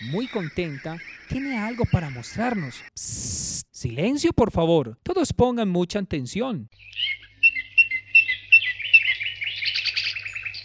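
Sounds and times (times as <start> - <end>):
small cucarachero birds chirping at a nest on a farm: 0.0 - 3.0, 6.7 - 10.6
speech: 0.0 - 7.1.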